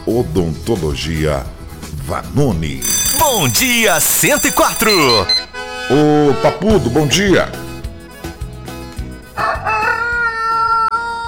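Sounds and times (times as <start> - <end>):
speech: 0.2 - 7.6
rooster crowing: 9.4 - 11.1.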